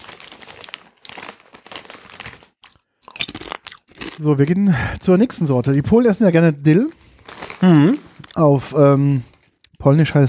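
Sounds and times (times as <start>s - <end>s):
fruit gummies being chewed: 2.2s - 4.4s, 7.5s - 8.5s, 9.2s - 9.8s
speech: 4.2s - 7.0s, 7.6s - 10.2s.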